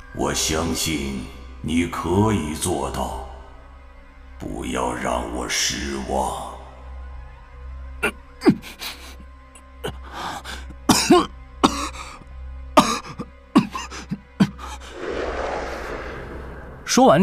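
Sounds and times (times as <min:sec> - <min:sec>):
speech: 0:00.2 - 0:03.3, 0:04.4 - 0:06.5, 0:08.0 - 0:08.9, 0:17.0 - 0:17.2
man coughing violently: 0:10.9 - 0:12.2, 0:12.8 - 0:14.6.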